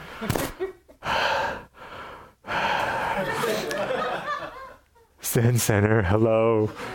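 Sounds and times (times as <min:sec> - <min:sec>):
person imitating heavy exaggerated breathing of a yogi: 0:00.0 - 0:03.7
speech: 0:00.2 - 0:00.4, 0:05.3 - 0:06.9
laughter: 0:02.8 - 0:05.2, 0:06.7 - 0:06.9.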